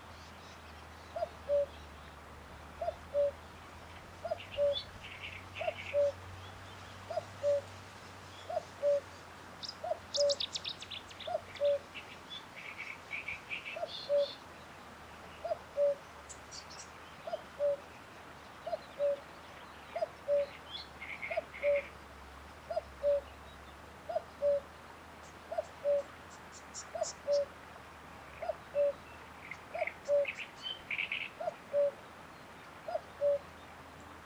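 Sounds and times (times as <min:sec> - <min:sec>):
Cuculus canorus calling: 0:01.2 - 0:01.7, 0:02.8 - 0:03.4, 0:04.3 - 0:04.9, 0:05.6 - 0:06.2, 0:07.1 - 0:07.7, 0:08.5 - 0:09.0, 0:11.3 - 0:11.8, 0:13.8 - 0:14.4, 0:15.4 - 0:16.0, 0:17.3 - 0:17.8, 0:18.7 - 0:19.2, 0:20.0 - 0:20.6, 0:21.2 - 0:21.9, 0:22.7 - 0:23.2, 0:24.1 - 0:24.6, 0:25.5 - 0:26.1, 0:26.8 - 0:27.5, 0:28.4 - 0:29.0, 0:29.7 - 0:30.4, 0:31.0 - 0:32.0, 0:32.9 - 0:33.5.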